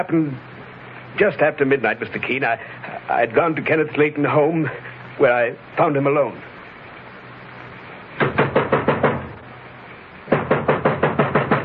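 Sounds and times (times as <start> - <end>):
speech: 0.0 - 0.5, 1.2 - 6.5
brisk firm knocking on a door: 8.2 - 9.4, 10.3 - 11.6.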